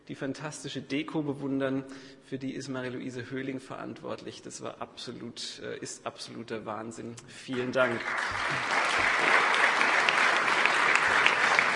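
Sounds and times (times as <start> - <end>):
speech: 0.1 - 9.6
audience applause: 7.6 - 11.7.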